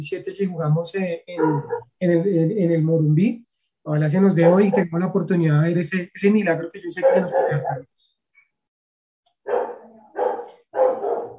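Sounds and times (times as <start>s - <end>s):
speech: 0.0s - 8.0s
small pet dog barking: 1.4s - 1.9s, 7.0s - 7.7s, 9.5s - 11.3s.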